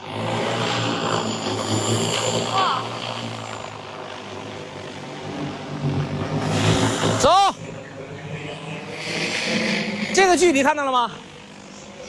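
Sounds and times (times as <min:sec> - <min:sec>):
agricultural drone rotors buzzing over a rice paddy: 0:00.0 - 0:12.0
speech: 0:10.3 - 0:11.2.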